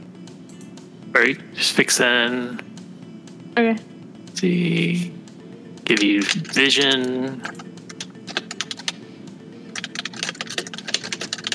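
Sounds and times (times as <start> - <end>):
speech: 1.1 - 2.7, 3.6 - 5.2, 5.9 - 7.7
typing on a computer keyboard: 5.9 - 9.0, 9.6 - 11.5.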